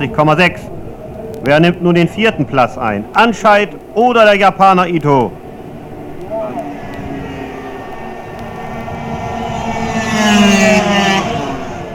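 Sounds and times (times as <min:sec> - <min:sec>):
speech: 0:00.0 - 0:00.8, 0:01.4 - 0:05.4
Kreidler and Suzuki racing motorcycle engines roaring past in a race: 0:05.7 - 0:11.9.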